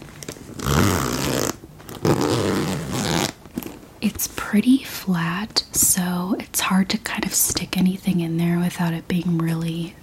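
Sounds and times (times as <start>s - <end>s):
zipper pocket on a handbag being unzipped: 0.6s - 3.4s
speech: 4.0s - 10.0s.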